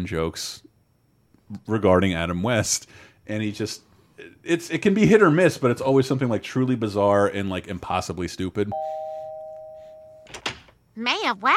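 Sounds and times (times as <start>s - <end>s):
speech: 0.0s - 0.7s, 1.5s - 9.1s, 11.0s - 11.5s
doorbell chiming with a single sustained tone: 8.7s - 10.3s.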